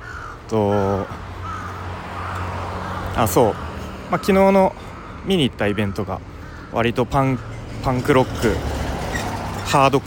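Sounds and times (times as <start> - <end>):
crow cawing in loud harsh calls: 0.0 - 8.0
speech: 0.5 - 1.2, 3.2 - 8.7, 9.7 - 10.0.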